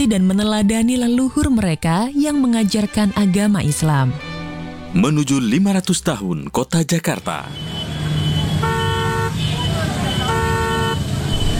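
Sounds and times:
speech: 0:00.0 - 0:04.3, 0:04.9 - 0:07.8
dense rumble of a severe traffic jam: 0:07.2 - 0:11.5
car horns honking in a severe traffic jam: 0:07.4 - 0:11.5.

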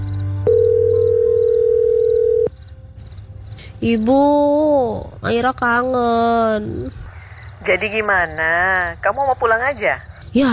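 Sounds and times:
faint high beeping: 0:00.0 - 0:03.6, 0:06.3 - 0:10.5
telephone ringing tone on an outgoing call: 0:00.5 - 0:02.5
speech: 0:03.8 - 0:07.0, 0:07.6 - 0:10.5.

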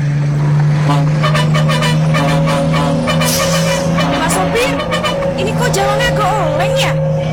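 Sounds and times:
car engine droning while driven along a road: 0:00.0 - 0:07.3
voices: 0:00.4 - 0:07.3.

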